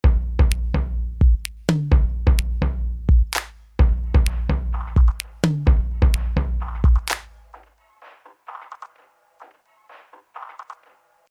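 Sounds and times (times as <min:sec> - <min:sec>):
tom drum: 0:00.0 - 0:07.7.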